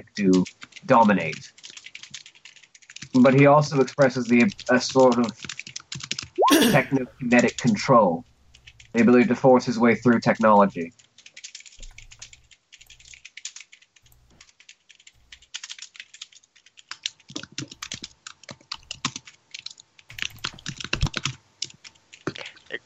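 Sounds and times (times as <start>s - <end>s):
speech: 0.0s - 1.6s, 3.2s - 5.5s, 6.6s - 8.3s, 8.9s - 11.0s
two people typing on computer keyboards: 1.5s - 3.5s, 8.5s - 9.0s, 10.9s - 22.4s.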